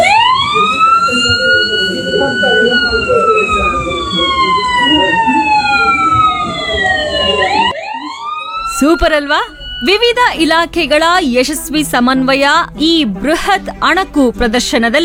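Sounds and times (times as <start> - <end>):
emergency vehicle siren wailing after a large mock rescue drill: 0.0 - 10.8
speech: 8.9 - 15.0.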